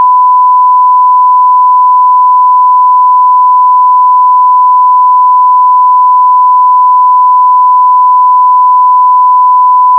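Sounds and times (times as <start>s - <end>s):
1kHz tone: 0.0s - 9.9s.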